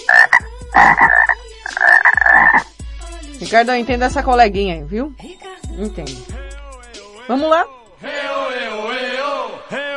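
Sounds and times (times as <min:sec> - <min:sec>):
frog croaking in rapid rattling trills: 0:00.0 - 0:02.7
speech: 0:00.3 - 0:01.9, 0:03.4 - 0:06.3, 0:07.3 - 0:08.5.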